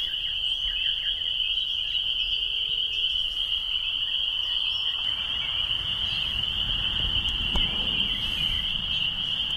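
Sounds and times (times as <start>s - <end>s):
faint bird calls: 0.0s - 9.5s
spring peeper frogs calling in evening chorus: 0.0s - 9.5s
low rumble: 5.0s - 9.5s.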